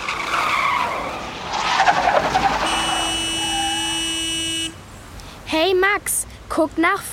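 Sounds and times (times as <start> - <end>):
taxi braking suddenly with tires screeching: 0.0 - 4.7
long steady car horn blast: 2.6 - 4.8
speech: 5.8 - 7.1.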